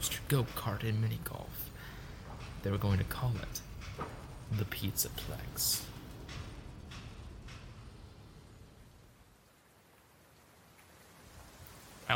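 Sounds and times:
heavy rain on dirt and pavement: 0:00.0 - 0:12.1
speech: 0:00.3 - 0:01.7, 0:02.6 - 0:05.9.

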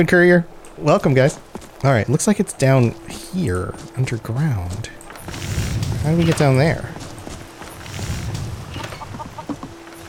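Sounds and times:
speech: 0:00.0 - 0:07.0
chickens clucking: 0:08.7 - 0:10.0.

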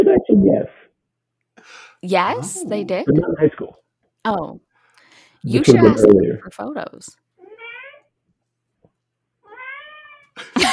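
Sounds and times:
speech: 0:00.0 - 0:00.8, 0:01.6 - 0:04.6, 0:05.4 - 0:07.2
cat meowing: 0:07.4 - 0:08.1, 0:09.4 - 0:10.3.

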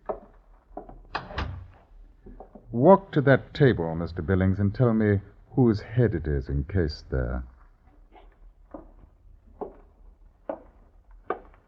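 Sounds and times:
wooden door creaking: 0:01.0 - 0:02.7
door shutting with a solid thud: 0:01.1 - 0:01.8
speech: 0:02.7 - 0:07.5.

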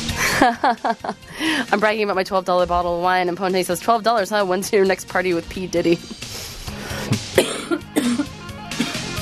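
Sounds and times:
laughter: 0:00.1 - 0:01.3
speech: 0:00.4 - 0:06.2
sharp coughs with a laughing edge: 0:07.3 - 0:09.1.

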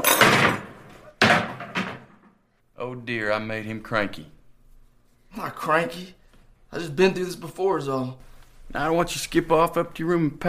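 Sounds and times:
chair toppling over and crashing onto the floor: 0:00.0 - 0:02.4
speech: 0:02.8 - 0:04.4, 0:05.3 - 0:10.4.

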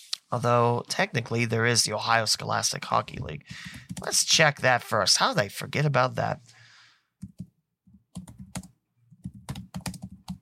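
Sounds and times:
speech: 0:00.3 - 0:06.6
typing on a computer keyboard: 0:08.2 - 0:10.4.

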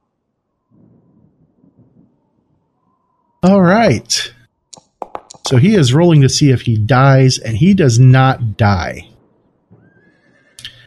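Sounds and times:
speech: 0:03.4 - 0:04.4, 0:05.5 - 0:09.1
horse neighing: 0:09.8 - 0:10.8.

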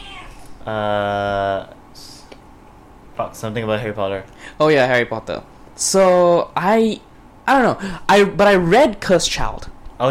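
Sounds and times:
cat meowing: 0:00.0 - 0:00.6
speech: 0:00.7 - 0:01.8, 0:03.2 - 0:10.0.

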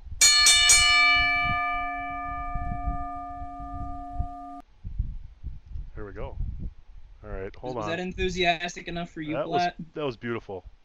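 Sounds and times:
bell struck and ringing: 0:00.1 - 0:04.6
speech: 0:07.6 - 0:10.8.

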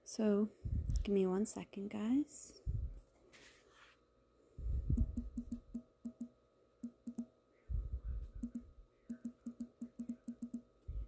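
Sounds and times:
speech: 0:00.1 - 0:02.7
typing on a phone: 0:05.0 - 0:07.3, 0:08.4 - 0:10.7.

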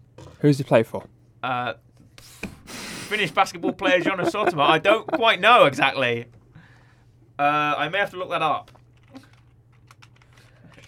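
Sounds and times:
speech: 0:00.4 - 0:02.4, 0:03.1 - 0:06.4, 0:07.4 - 0:09.2
laughter: 0:02.8 - 0:06.0
typing on a computer keyboard: 0:08.6 - 0:10.8.

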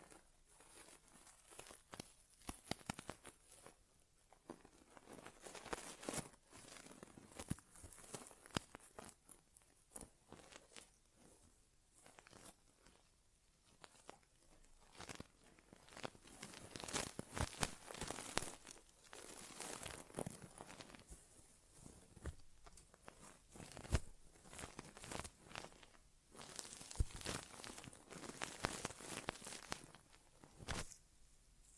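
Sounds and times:
ear exam crackling and scratching near the ear: 0:00.0 - 0:31.7.

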